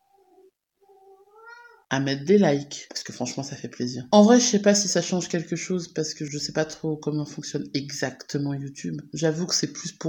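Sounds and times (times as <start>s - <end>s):
cat meowing and yowling: 0.0s - 1.9s
speech: 1.9s - 10.0s.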